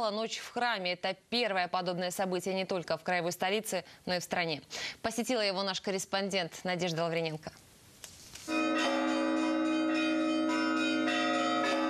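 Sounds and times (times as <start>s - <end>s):
speech: 0.0s - 7.6s
church bells ringing in a peal: 8.5s - 11.8s.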